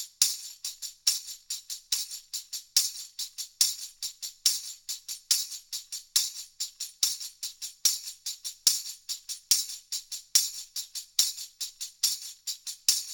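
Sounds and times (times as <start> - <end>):
tambourine: 0.0 - 13.1.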